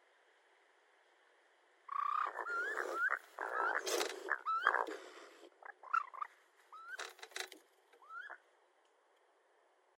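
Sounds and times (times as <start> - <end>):
raccoon chirping with rising whistled notes and harsh bursts: 1.9 - 4.9, 5.6 - 7.1, 8.0 - 8.4.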